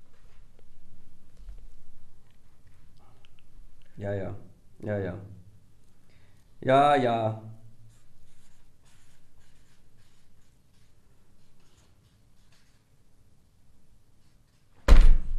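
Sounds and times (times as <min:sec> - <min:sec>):
speech: 0:04.0 - 0:05.4, 0:06.6 - 0:07.5
pen scratching across paper writing a vote: 0:07.9 - 0:12.9
loud thump: 0:14.8 - 0:15.3.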